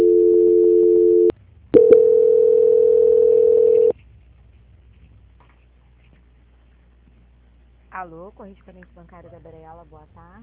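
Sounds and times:
telephone call-transfer tones: 0.0s - 3.9s
speech: 8.0s - 10.4s.

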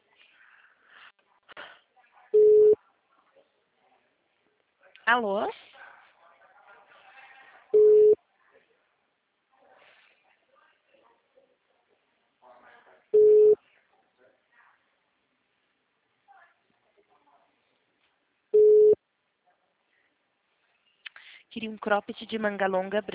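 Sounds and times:
speech: 5.1s - 5.6s, 21.5s - 23.1s
telephone busy signal: 7.8s - 8.2s, 13.2s - 13.6s, 18.6s - 19.0s.

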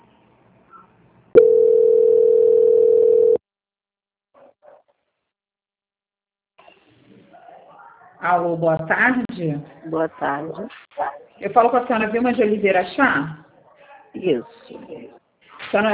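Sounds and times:
telephone line tone while a call is transferred: 1.4s - 3.4s
speech: 8.2s - 10.8s, 11.4s - 13.4s, 14.1s - 15.0s, 15.7s - 15.9s.

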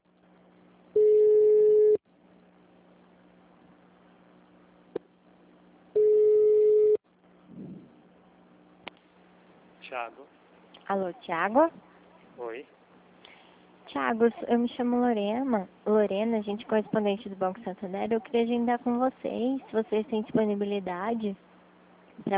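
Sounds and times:
quiet hum: 0.1s - 22.3s
telephone line tones while a call is transferred: 0.9s - 2.0s, 5.9s - 7.0s
speech: 11.1s - 11.9s, 13.9s - 21.5s, 22.2s - 22.3s.

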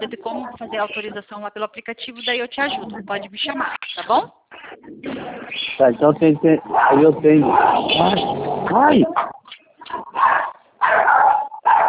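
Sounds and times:
speech: 0.0s - 11.8s
dog barking with a slight whining edge: 6.7s - 8.2s, 8.8s - 11.8s.

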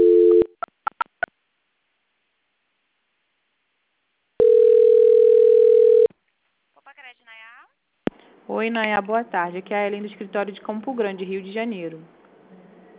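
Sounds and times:
telephone line tone during a call transfer: 0.0s - 0.6s, 4.4s - 6.1s
speech: 8.6s - 12.2s.

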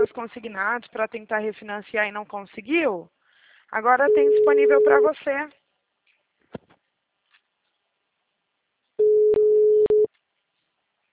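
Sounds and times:
speech: 0.0s - 5.6s
telephone busy tone as a call fails to connect: 4.1s - 5.1s, 9.0s - 10.1s.

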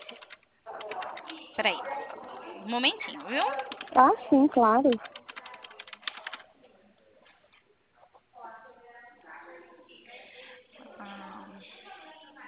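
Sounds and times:
keyboard typing of a message: 0.0s - 1.5s, 3.0s - 6.4s
speech: 2.7s - 5.1s.

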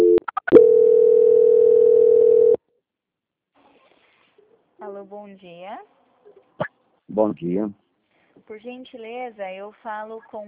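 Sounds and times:
telephone tone during a call transfer: 0.0s - 2.6s
speech: 5.3s - 7.8s, 8.5s - 10.4s.

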